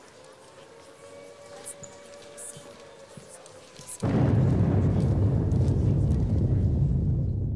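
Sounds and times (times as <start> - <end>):
faint steady air raid alarm wailing: 0.0 - 4.4
huge nuclear explosion with loud deep sustained rumble: 4.0 - 7.5.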